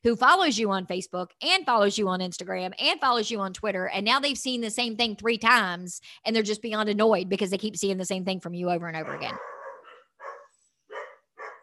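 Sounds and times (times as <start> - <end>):
speech: 0.0 - 9.5
dogs barking: 9.0 - 11.6.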